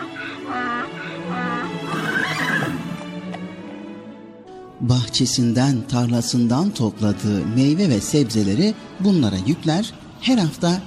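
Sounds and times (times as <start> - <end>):
horse neighing: 0.0 - 3.0
speech: 4.8 - 10.8.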